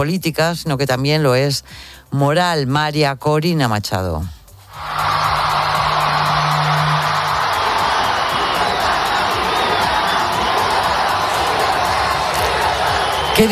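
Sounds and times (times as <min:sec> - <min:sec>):
speech: 0:00.0 - 0:05.0
large crowd at a mass rally in Madrid shouting for freedom: 0:04.7 - 0:13.4.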